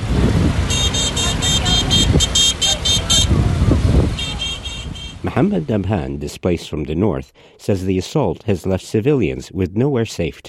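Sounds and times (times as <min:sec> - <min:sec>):
steady rumble of engines on a crowded road: 0:00.0 - 0:06.2
car horn beeping on a crowded road: 0:00.6 - 0:05.4
voices murmuring in a crowd of fleeing families: 0:00.6 - 0:05.6
speech: 0:05.4 - 0:10.4.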